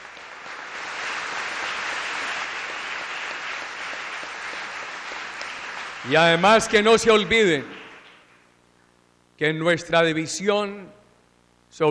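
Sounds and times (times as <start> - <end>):
crowd applauding: 0.0 - 8.2
speech: 6.0 - 7.8, 9.4 - 11.0.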